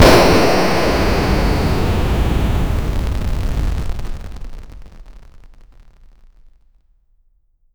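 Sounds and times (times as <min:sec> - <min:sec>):
TNT explosion: 0:00.0 - 0:06.1.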